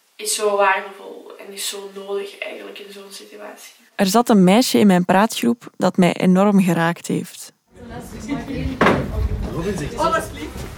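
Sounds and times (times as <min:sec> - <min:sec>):
speech: 0:00.2 - 0:08.7, 0:09.6 - 0:10.6
steady murmur of voices: 0:07.8 - 0:10.6
heavy studio door thudding shut: 0:08.8 - 0:09.7.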